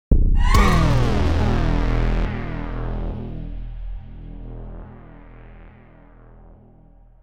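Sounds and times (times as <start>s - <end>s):
synth stinger: 0.3s - 6.9s.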